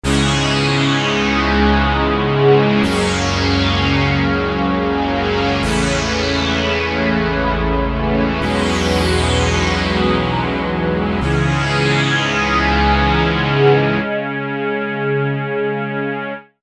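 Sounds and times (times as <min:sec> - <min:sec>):
synthesizer pad: 0:00.0 - 0:16.3.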